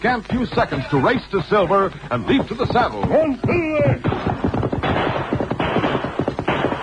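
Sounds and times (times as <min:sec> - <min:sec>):
speech: 0:00.0 - 0:05.2
gunshots as a gang shoots in a canyon: 0:03.9 - 0:06.8.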